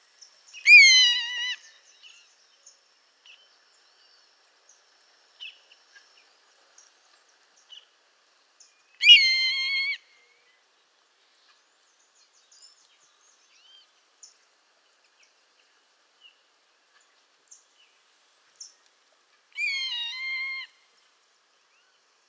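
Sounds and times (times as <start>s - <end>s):
Buteogallus meridionalis savanna hawk call: 0.7s - 1.6s, 9.0s - 10.0s, 19.6s - 20.8s.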